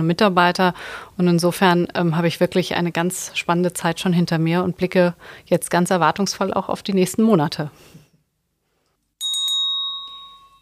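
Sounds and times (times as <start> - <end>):
speech: 0.0 - 8.0
presiding officer's bell ringing for order in a state parliament: 9.2 - 10.6.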